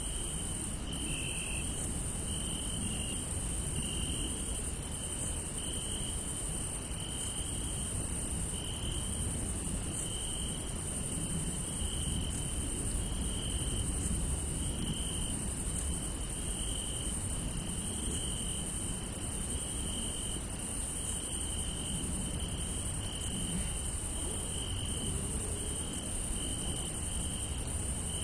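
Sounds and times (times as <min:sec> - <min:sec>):
crickets chirping across a field at night: 0:00.0 - 0:28.2.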